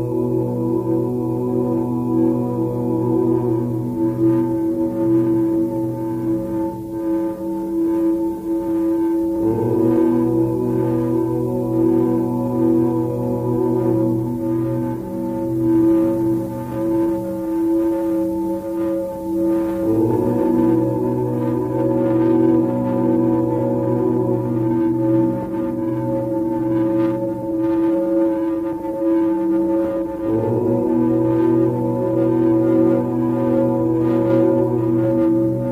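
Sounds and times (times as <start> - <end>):
om chanting: 0.0 - 35.6
singing bowls humming with low drone and bright sustained tones: 0.0 - 35.6.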